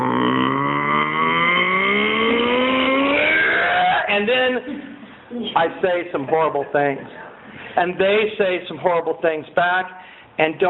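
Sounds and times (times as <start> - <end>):
engine revving from low rumble to high whine: 0.0 - 4.1
speech: 5.5 - 7.2, 7.8 - 10.6.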